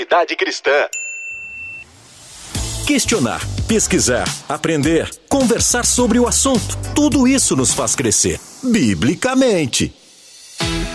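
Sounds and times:
speech: 0:00.0 - 0:01.0, 0:02.9 - 0:10.0
notification bell ding: 0:00.9 - 0:01.9.

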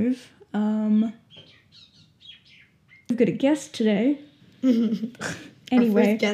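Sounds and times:
speech: 0:00.0 - 0:01.8, 0:03.2 - 0:06.3
bird chirping close to the house: 0:00.9 - 0:03.2.

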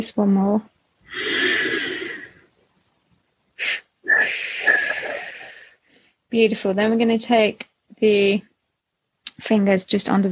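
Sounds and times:
speech: 0:00.0 - 0:01.8, 0:06.3 - 0:08.5, 0:09.4 - 0:10.3
deep breath in and out during a guided relaxation exercise: 0:01.1 - 0:02.4, 0:03.6 - 0:06.2.

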